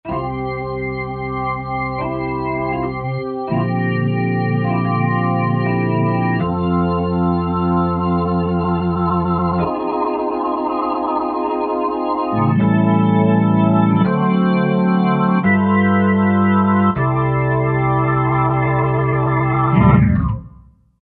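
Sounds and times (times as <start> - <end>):
Roland SRX-03 Studio SRX wheel drawbar organ tone: 0.1 - 20.6.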